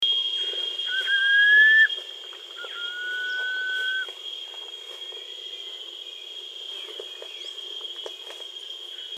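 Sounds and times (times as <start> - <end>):
striolated puffbird calling: 0.3 - 4.1.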